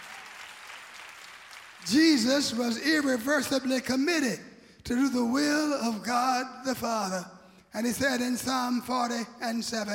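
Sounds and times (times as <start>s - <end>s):
crowd applause: 0.0s - 2.2s
speech: 1.8s - 9.9s.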